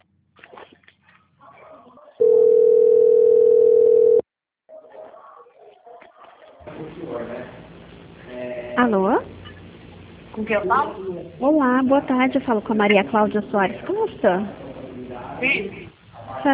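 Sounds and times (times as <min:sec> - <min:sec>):
telephone line tone during bank call-centre call transfer: 0:02.2 - 0:04.2
speech: 0:10.4 - 0:14.6.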